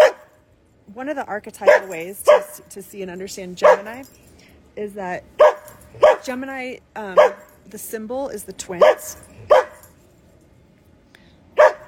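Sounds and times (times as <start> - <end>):
dog barking: 0.0 - 0.3, 1.6 - 2.7, 3.6 - 4.1, 5.4 - 6.4, 7.2 - 7.6, 8.8 - 9.9, 11.6 - 11.8
speech: 1.0 - 9.6.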